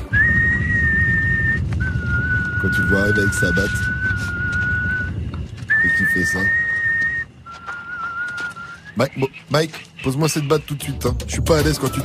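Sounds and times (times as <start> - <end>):
eerie whistled tune of two long held notes: 0.0 - 9.0
speech: 2.6 - 4.0, 6.1 - 6.6, 9.0 - 12.0.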